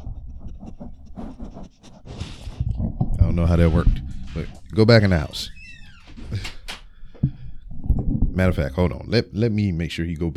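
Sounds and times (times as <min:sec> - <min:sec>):
dog sniffing and panting at a door and a microphone: 0:00.0 - 0:05.2
speech: 0:03.4 - 0:05.6, 0:08.4 - 0:10.3.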